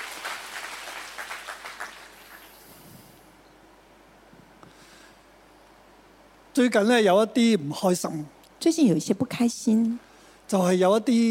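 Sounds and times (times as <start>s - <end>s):
church audience clapping: 0.0s - 2.7s
speech: 6.6s - 11.2s.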